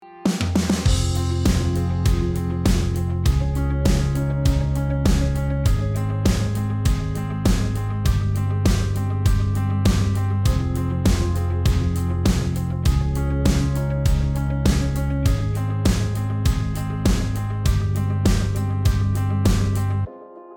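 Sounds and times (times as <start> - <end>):
pop-rock music: 0.3 - 20.1.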